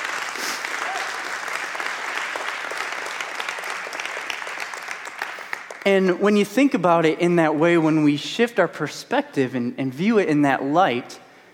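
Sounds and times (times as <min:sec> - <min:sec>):
audience applauding: 0:00.0 - 0:06.1
speech: 0:05.8 - 0:11.2.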